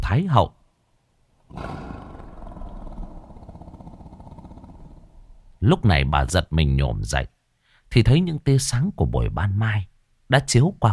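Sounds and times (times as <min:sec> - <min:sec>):
speech: 0:00.1 - 0:00.6, 0:01.5 - 0:01.9, 0:05.6 - 0:07.3, 0:07.9 - 0:10.9
tiger roaring and growling: 0:01.5 - 0:05.6.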